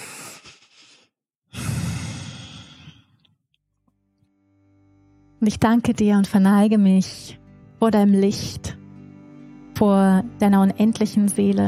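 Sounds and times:
deep breathing in and out during a calming meditation: 0.0s - 3.3s
speech: 5.4s - 8.8s, 9.8s - 11.6s.

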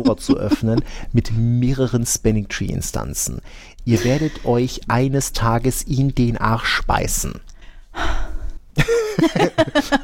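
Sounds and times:
laughter: 0.0s - 0.9s, 3.9s - 4.5s, 8.8s - 10.0s
speech: 0.0s - 8.2s, 8.8s - 10.0s
woman breathing heavily with gasping breaths: 7.6s - 8.6s.

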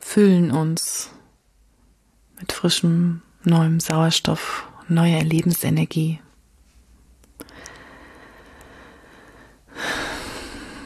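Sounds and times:
speech: 0.2s - 1.2s, 2.4s - 6.2s
deep breathing in and out during a guided breathing exercise: 7.4s - 10.8s.

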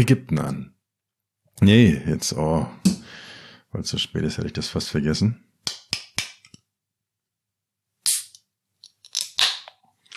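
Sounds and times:
speech: 0.0s - 0.7s, 1.6s - 3.0s, 3.7s - 5.8s
beer can opening: 9.0s - 10.1s.

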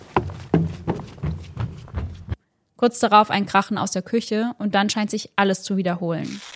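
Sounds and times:
heavy footsteps on a wooden attic floor: 0.0s - 2.4s
speech: 2.8s - 6.5s.

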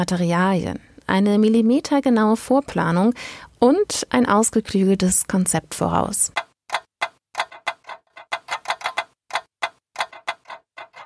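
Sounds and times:
speech: 0.0s - 6.5s
hinges and latches clicking: 6.7s - 11.0s.

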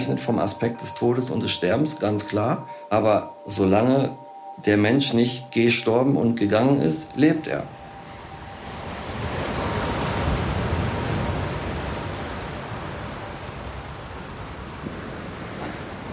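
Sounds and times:
speech: 0.0s - 7.8s
wind: 0.0s - 16.1s
ocean waves breaking on shore: 7.0s - 16.1s.

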